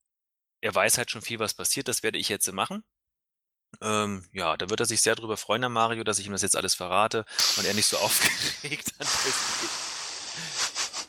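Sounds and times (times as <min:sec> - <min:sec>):
speech: 0:00.6 - 0:03.0, 0:03.8 - 0:10.7
laughter: 0:07.8 - 0:09.8, 0:10.4 - 0:11.0
heavy startled breathing with gasps: 0:08.9 - 0:11.0.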